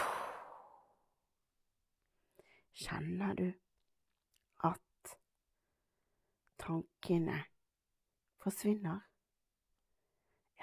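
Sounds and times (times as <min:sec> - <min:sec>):
long breathy exhale in a guided breathing exercise: 0:00.0 - 0:01.0
speech: 0:02.7 - 0:03.6, 0:04.6 - 0:05.2, 0:06.6 - 0:07.5, 0:08.4 - 0:09.1.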